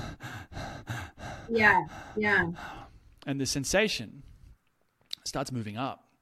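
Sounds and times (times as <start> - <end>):
person breathing quickly and heavily: 0.0 - 3.2
speech: 1.5 - 4.3, 5.2 - 6.0.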